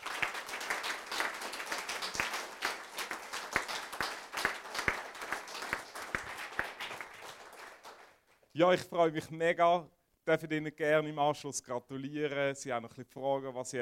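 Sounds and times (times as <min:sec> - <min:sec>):
audience applause: 0:00.0 - 0:08.2
speech: 0:08.6 - 0:13.8.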